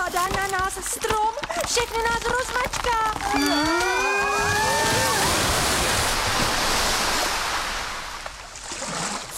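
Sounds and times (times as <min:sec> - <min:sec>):
speech: 0:00.1 - 0:05.2
brief high-pitched cry: 0:03.3 - 0:05.3
loud rushing water surging like crashing waves: 0:03.5 - 0:09.3.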